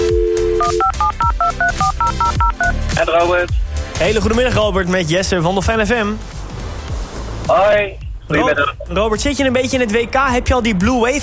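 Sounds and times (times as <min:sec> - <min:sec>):
telephone keypad DTMF tones as a number is dialed: 0:00.0 - 0:02.7
speech: 0:03.0 - 0:06.4, 0:07.5 - 0:11.2.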